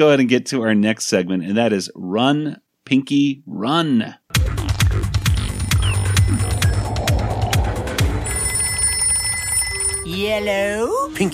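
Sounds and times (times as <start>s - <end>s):
speech: 0.0s - 4.2s, 10.1s - 11.3s
telephone bell ringing: 5.4s - 10.6s.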